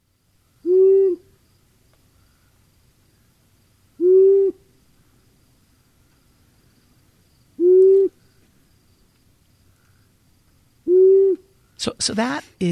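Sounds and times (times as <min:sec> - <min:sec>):
faint insect-like hum: 0:00.0 - 0:12.7
male long-eared owl hooting: 0:00.6 - 0:01.4, 0:04.0 - 0:05.2, 0:07.5 - 0:08.5, 0:10.8 - 0:11.8
speech: 0:11.8 - 0:12.7.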